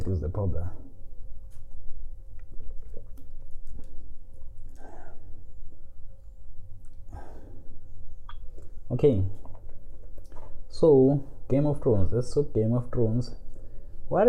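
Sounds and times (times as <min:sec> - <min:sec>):
low steady hum: 0:00.0 - 0:14.2
speech: 0:00.1 - 0:00.8, 0:08.9 - 0:09.4, 0:10.7 - 0:13.4
person sipping and swallowing cold water: 0:02.3 - 0:05.5.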